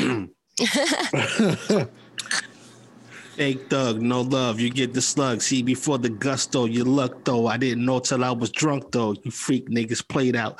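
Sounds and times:
person clearing throat: 0.0s - 0.4s, 1.1s - 2.6s
laughter: 0.6s - 2.0s
speech: 0.6s - 2.5s, 3.4s - 10.5s.

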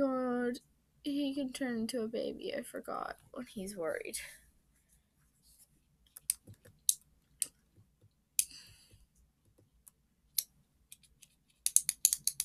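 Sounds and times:
speech: 0.0s - 4.4s
pen clicking: 10.4s - 12.4s.

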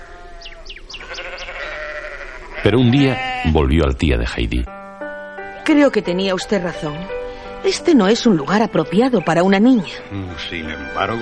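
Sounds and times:
goats bleating: 0.0s - 3.7s
speech: 2.6s - 4.8s, 5.6s - 11.2s
steady tonal bed: 4.4s - 11.2s.

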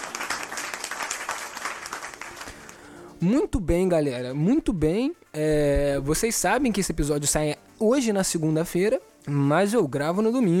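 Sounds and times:
crowd applause: 0.0s - 2.9s
speech: 3.2s - 10.5s.

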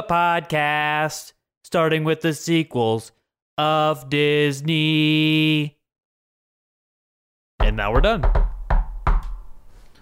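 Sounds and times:
speech: 0.0s - 5.8s, 7.6s - 8.4s
firm knocks on a solid surface: 7.6s - 9.6s.

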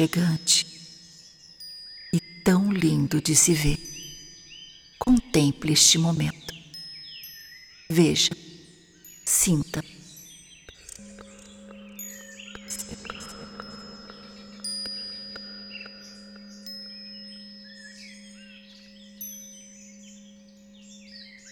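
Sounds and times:
speech: 0.0s - 0.8s, 2.1s - 4.0s, 5.0s - 6.6s, 7.9s - 8.5s, 9.3s - 10.0s
birds chirping and tweeting: 0.0s - 21.5s
soft bell-like chimes: 0.0s - 21.5s
steady sustained low hum: 11.0s - 19.9s.

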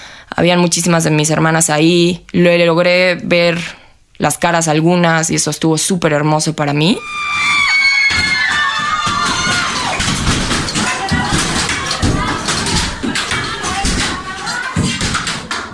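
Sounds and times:
speech: 0.4s - 7.6s
dense crowd of women shouting and yelling angrily: 7.0s - 13.2s
scattered thuds: 8.1s - 15.7s.

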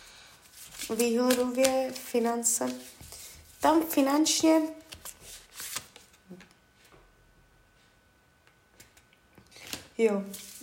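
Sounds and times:
tarot cards being shuffled: 0.5s - 6.2s, 9.6s - 10.6s
speech: 0.9s - 3.0s, 3.6s - 4.8s, 10.0s - 10.5s.

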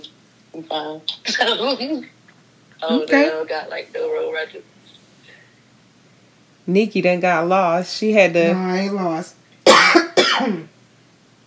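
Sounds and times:
speech: 0.6s - 2.2s, 2.8s - 4.8s, 6.7s - 10.7s
harsh cough from tequila going down the wrong pipe: 9.6s - 10.7s.

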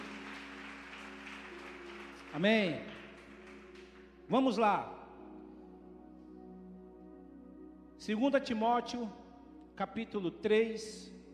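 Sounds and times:
crowd applauding: 0.0s - 4.6s
speech: 2.3s - 2.9s, 4.3s - 5.0s, 8.0s - 9.2s, 9.8s - 11.2s.

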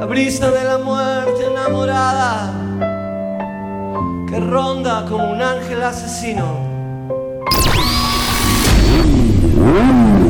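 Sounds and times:
speech: 0.0s - 2.6s, 4.3s - 6.7s, 9.0s - 10.2s
engines revving at full power: 7.5s - 10.2s.

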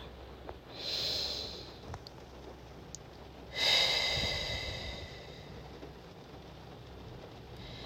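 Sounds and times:
person breathing slowly during a guided relaxation exercise: 0.7s - 1.9s, 3.5s - 5.6s, 7.6s - 7.8s.

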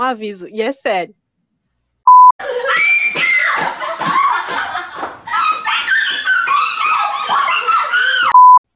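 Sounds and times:
speech: 0.0s - 1.2s
short electronic beep: 2.1s - 2.3s
woman screaming loudly and shrilly: 2.4s - 3.8s, 5.3s - 8.4s
laughter: 2.4s - 8.4s.

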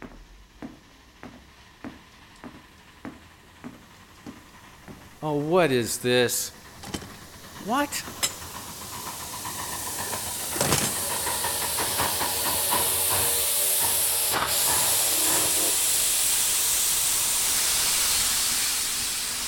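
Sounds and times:
steam train hissing: 0.8s - 19.4s
speech: 5.2s - 6.6s, 7.7s - 8.2s
metallic clanks and knocks: 6.7s - 8.6s.

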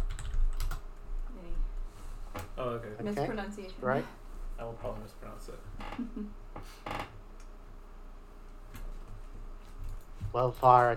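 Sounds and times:
typing on a computer keyboard as a name is entered: 0.0s - 0.8s
speech: 2.6s - 7.1s, 10.3s - 10.9s.

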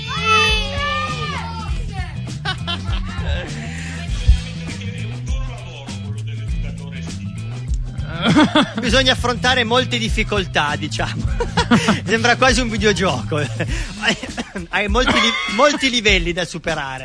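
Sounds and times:
group of children shouting a reply together in high bright voices: 0.0s - 2.1s
steady backing music: 0.0s - 17.0s
laughter: 2.2s - 7.1s, 7.9s - 9.2s, 10.9s - 16.2s
speech: 8.6s - 17.0s.

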